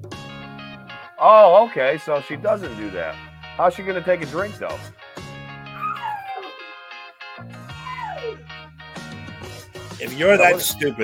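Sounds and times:
speech: 0:01.2 - 0:05.0, 0:10.0 - 0:11.0
dog whimpering and howling: 0:05.7 - 0:06.8, 0:07.7 - 0:08.4.

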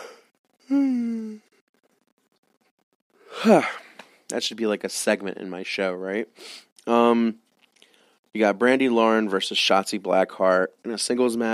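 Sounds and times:
single yawn with breathy intake and voiced groan: 0:00.0 - 0:01.5, 0:03.3 - 0:03.9
speech: 0:00.7 - 0:00.9, 0:03.4 - 0:07.5, 0:08.4 - 0:11.5.

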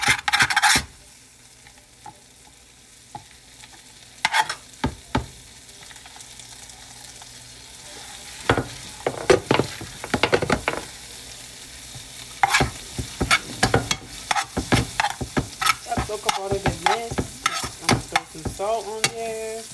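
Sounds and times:
utensil scraping and stirring in a pot: 0:00.0 - 0:00.9, 0:12.4 - 0:19.5
butter sizzling in a pot while finishing eggs: 0:00.0 - 0:19.7.

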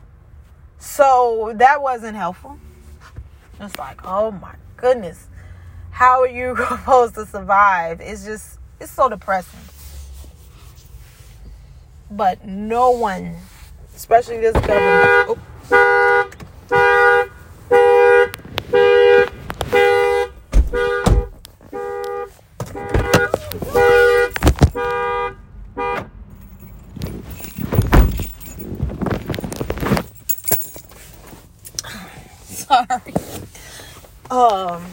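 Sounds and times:
speech: 0:00.8 - 0:02.7, 0:03.6 - 0:05.3, 0:06.0 - 0:09.7, 0:12.1 - 0:15.5
car door opening and shutting: 0:14.4 - 0:17.0, 0:18.1 - 0:21.8, 0:22.6 - 0:25.0, 0:26.8 - 0:30.2
car horn chirps from unlocking: 0:14.6 - 0:26.3
keys jingling: 0:23.9 - 0:24.9, 0:26.3 - 0:31.4.

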